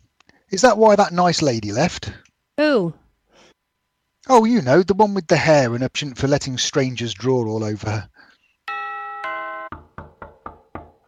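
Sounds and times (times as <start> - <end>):
speech: 0.5 - 3.0, 4.3 - 8.3
two-tone doorbell chime: 8.7 - 9.8
sharp knocks on a door: 9.7 - 11.0.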